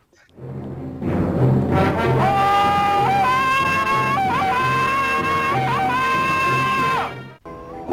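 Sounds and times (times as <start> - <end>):
jungle hero's ululating yell: 1.9 - 7.3.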